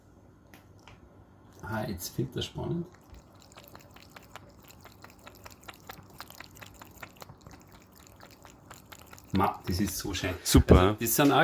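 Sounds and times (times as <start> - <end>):
water trickling in a pet water fountain: 1.5 - 10.4
speech: 1.6 - 3.0, 9.7 - 11.4
cat's paw slapping and splashing water in a kitchen pet fountain: 2.9 - 10.3.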